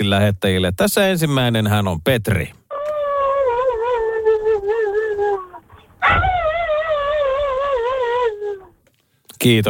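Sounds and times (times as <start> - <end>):
speech: 0.1 - 2.6, 6.1 - 6.4, 9.4 - 9.6
person imitating a husky with howl-like whines: 2.7 - 8.8.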